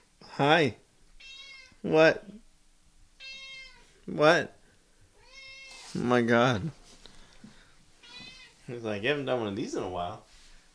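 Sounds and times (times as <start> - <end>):
speech: 0.4 - 0.8, 1.8 - 2.4, 4.1 - 4.6, 6.0 - 6.8, 8.7 - 10.3
cat meowing: 1.2 - 1.8, 3.2 - 4.0, 5.2 - 6.0, 8.0 - 8.6.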